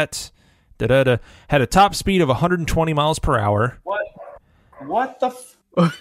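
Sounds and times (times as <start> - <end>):
speech: 0.0 - 4.2, 4.8 - 5.9
dog barking: 3.9 - 5.2.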